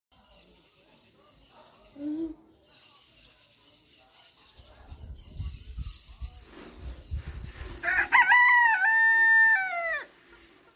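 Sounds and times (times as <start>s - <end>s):
Silkie rooster crowing: 7.8s - 10.1s.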